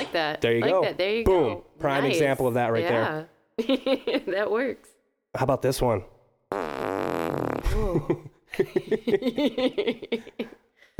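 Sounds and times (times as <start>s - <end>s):
speech: 0.1s - 6.7s, 7.7s - 10.6s
loud explosive fart: 6.5s - 8.0s
laughter: 7.7s - 10.5s.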